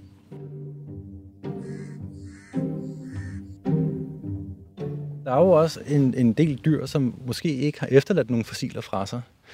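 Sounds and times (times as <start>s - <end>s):
birds calling outdoors: 1.4s - 3.9s
speech: 5.3s - 9.5s.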